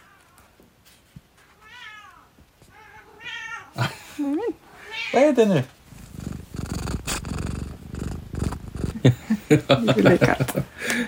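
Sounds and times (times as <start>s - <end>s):
speech: 5.2s - 5.8s, 9.5s - 11.0s
cat purring: 5.6s - 9.9s
laughter: 9.0s - 11.0s.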